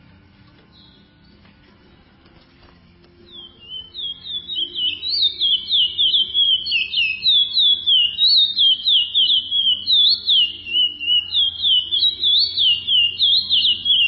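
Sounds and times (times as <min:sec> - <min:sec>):
chestnut-bellied seed finch singing rich looping whistled notes: 0:00.6 - 0:01.5, 0:03.2 - 0:14.0.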